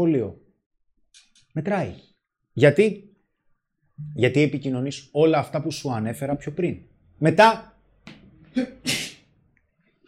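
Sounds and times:
speech: 0:00.0 - 0:00.4, 0:01.2 - 0:03.1, 0:04.0 - 0:09.0
single sneeze: 0:08.6 - 0:09.3.

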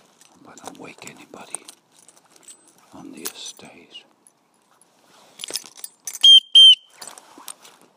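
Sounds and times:
faint clattering and handling noise: 0:00.0 - 0:06.3, 0:06.9 - 0:07.9
whistle blasts by someone walking along a road: 0:06.2 - 0:07.0.

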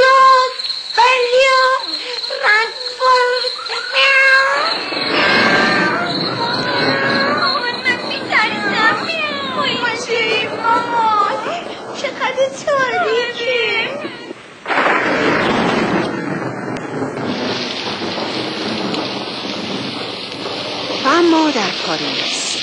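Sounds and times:
voices: 0:00.0 - 0:14.4, 0:21.0 - 0:22.6
steady hissing rain: 0:00.0 - 0:22.6
thunder crack and rumble: 0:00.0 - 0:22.6.

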